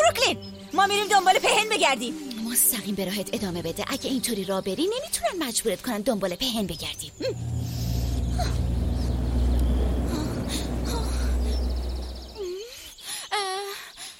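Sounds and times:
speech: 0:00.3 - 0:07.8, 0:08.4 - 0:08.6
steady rumbling noise: 0:06.6 - 0:12.6.

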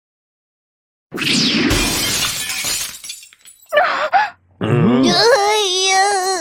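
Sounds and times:
glass drink bottle smashing and shattering: 0:01.2 - 0:03.8
person moaning: 0:03.8 - 0:05.7
person grunting: 0:04.0 - 0:05.5.

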